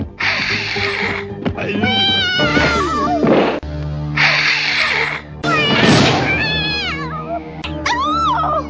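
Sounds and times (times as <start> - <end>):
cat meowing and caterwauling: 0.2 - 1.2, 1.8 - 3.2, 4.2 - 8.6.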